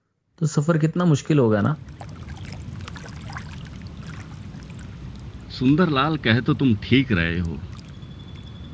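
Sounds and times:
speech: 0.4 - 2.0, 5.6 - 7.7
river water babbling and rushing: 1.8 - 8.7.

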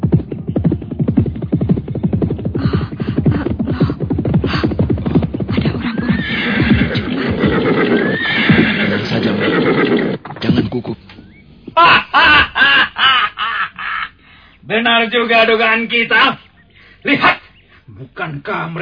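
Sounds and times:
horses neighing and whinnying: 1.2 - 12.6
laughter: 5.5 - 7.5, 11.7 - 14.2
speech: 14.7 - 16.4, 17.0 - 17.4, 18.0 - 18.8.

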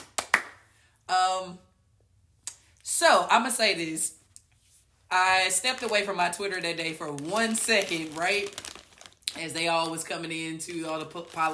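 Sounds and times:
sharp hand claps: 0.0 - 0.7
speech: 3.0 - 4.2, 5.1 - 8.7, 9.3 - 11.5.

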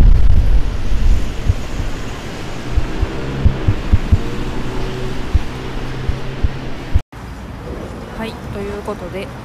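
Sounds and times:
wind rumbling against the microphone: 0.0 - 7.0
busy car traffic roar on Kasuga-dori street: 0.0 - 9.4
speech: 8.9 - 9.4.

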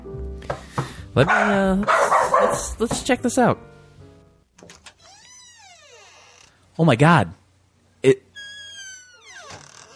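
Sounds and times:
dog barking: 1.2 - 2.8
speech: 1.2 - 3.7, 6.8 - 7.4, 8.0 - 8.2.

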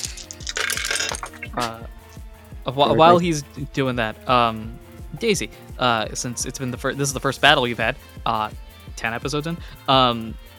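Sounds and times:
handful of dice spilling onto a hard surface: 0.0 - 1.7
speech: 1.6 - 2.0, 2.6 - 10.5.

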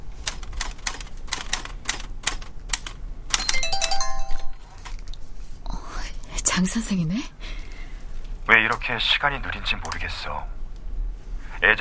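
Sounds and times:
typewriter keystrokes in a writing class: 0.2 - 4.0
short bright melodic phone text-message alert: 3.4 - 4.6
speech: 6.6 - 7.6, 8.5 - 10.6.

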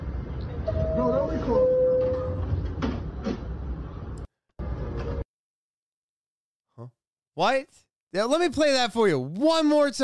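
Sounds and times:
rumble and rattle from inside a moving subway car: 0.0 - 5.2
speech: 7.4 - 10.0.

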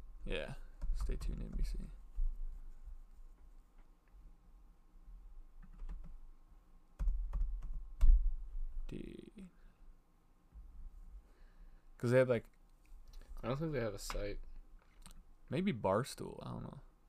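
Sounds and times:
speech: 0.2 - 2.0, 12.0 - 12.6, 13.4 - 14.5, 15.5 - 16.9
typing on a computer keyboard: 0.8 - 1.9, 5.6 - 6.2, 7.0 - 8.2.

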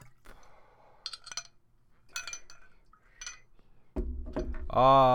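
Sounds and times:
ice cubes clinking and rattling inside a glass bong as a toke is taken: 1.1 - 1.6, 2.1 - 3.4
speech: 4.8 - 5.1.

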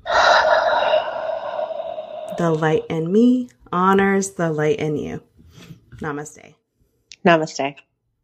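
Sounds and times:
person taking a deep breath at the close of a yoga session: 0.0 - 3.1
speech: 2.4 - 6.6, 7.2 - 7.9.

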